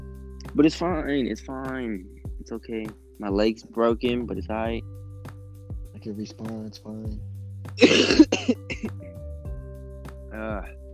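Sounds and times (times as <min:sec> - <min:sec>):
speech: 0:00.5 - 0:05.0, 0:06.0 - 0:09.2, 0:10.3 - 0:10.8
person coughing harshly: 0:07.8 - 0:08.9.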